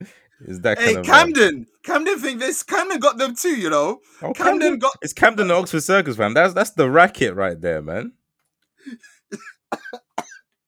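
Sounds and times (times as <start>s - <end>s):
speech: 0.4s - 8.2s, 8.8s - 10.3s
harsh raspy coughs: 8.9s - 10.5s.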